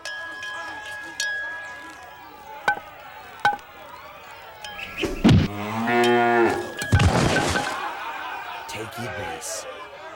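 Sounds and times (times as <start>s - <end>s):
cow mooing: 5.5s - 6.8s
laughter: 7.0s - 10.1s.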